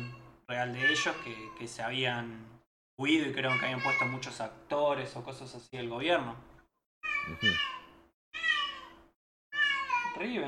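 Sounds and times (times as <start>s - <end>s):
cat meowing: 0.0s - 1.6s, 3.4s - 4.2s, 7.0s - 10.3s
speech: 0.5s - 6.5s, 7.2s - 7.8s, 10.2s - 10.4s.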